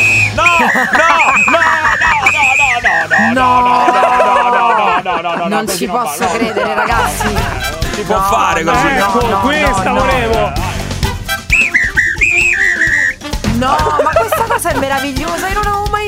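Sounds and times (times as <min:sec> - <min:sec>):
dog whistle being blown: 0:00.0 - 0:03.3, 0:11.5 - 0:13.3
lively voices talking over each other: 0:00.0 - 0:16.0
laughter: 0:00.3 - 0:10.9, 0:12.4 - 0:15.1
speech: 0:00.7 - 0:01.4, 0:05.5 - 0:10.8, 0:13.6 - 0:16.0.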